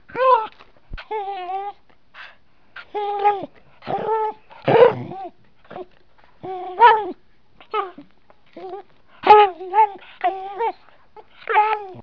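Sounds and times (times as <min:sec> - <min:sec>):
dog yelping: 0:02.8 - 0:12.0.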